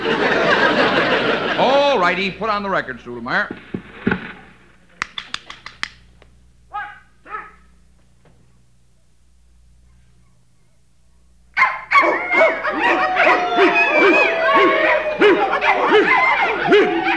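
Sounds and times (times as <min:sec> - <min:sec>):
laughter: 0:00.0 - 0:02.8, 0:12.0 - 0:17.1
speech: 0:02.0 - 0:03.8
sharp clicks: 0:03.5 - 0:06.4
dogs barking, yelping and whimpering excitedly: 0:06.7 - 0:07.7, 0:09.8 - 0:10.8, 0:11.6 - 0:17.1.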